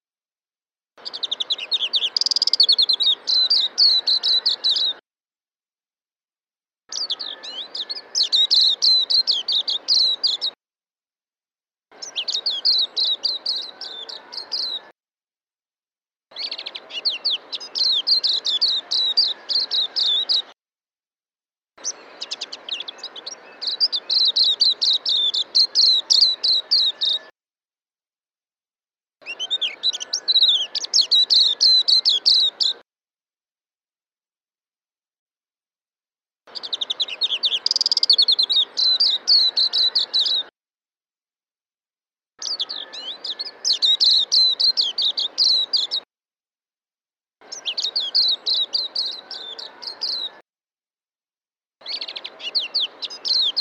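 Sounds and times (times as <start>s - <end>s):
silver-eye bird chirping: 1.0s - 5.0s, 6.9s - 10.6s, 11.9s - 14.9s, 16.3s - 20.5s, 21.8s - 27.3s, 29.2s - 32.8s, 36.5s - 40.5s, 42.4s - 46.1s, 47.4s - 50.4s, 51.8s - 53.5s.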